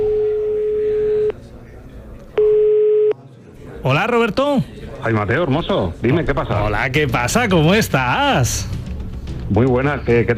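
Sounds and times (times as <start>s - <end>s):
telephone ringing tone while placing a call: 0.0s - 1.3s, 2.4s - 3.2s
speech: 3.8s - 8.8s, 9.5s - 10.3s.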